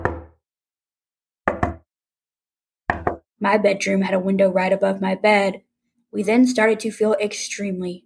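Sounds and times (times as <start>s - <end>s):
knocking on a window: 0.0s - 0.4s, 1.5s - 1.9s, 2.9s - 3.2s
speech: 3.4s - 8.0s.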